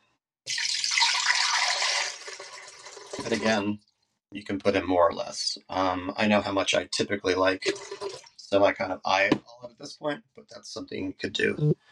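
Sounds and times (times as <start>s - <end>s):
water poured into a blender jar: 0.5s - 3.6s, 7.6s - 8.4s
speech: 3.2s - 11.9s.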